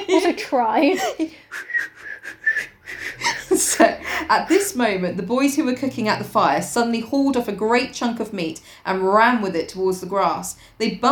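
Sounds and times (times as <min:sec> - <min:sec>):
speech: 0:00.1 - 0:01.7, 0:03.6 - 0:11.0
person attempting a casual whistle: 0:01.5 - 0:03.2.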